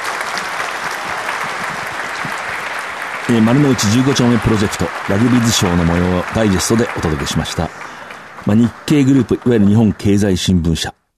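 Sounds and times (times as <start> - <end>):
sustained applause from a sizable audience: 0.0 - 10.8
speech: 3.3 - 11.0.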